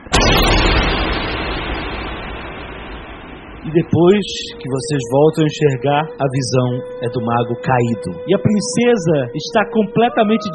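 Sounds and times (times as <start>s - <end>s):
magical explosion sound effect with long rumbling roar: 0.0s - 6.3s
speech: 3.6s - 10.5s.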